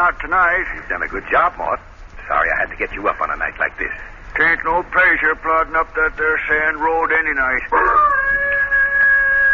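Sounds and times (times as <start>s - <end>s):
speech: 0.0s - 8.3s
hound dog howling at night: 7.7s - 9.5s.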